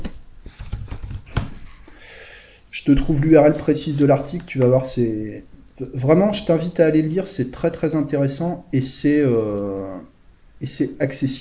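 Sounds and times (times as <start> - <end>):
clicking of keys on a computer keyboard: 0.0 - 1.6
speech: 2.8 - 11.3.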